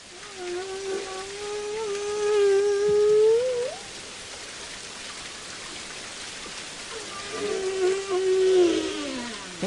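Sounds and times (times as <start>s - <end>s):
humpback whale song recorded underwater in New Zealand waters: 0.0s - 4.0s, 6.9s - 9.6s
faint hiss: 0.0s - 9.6s.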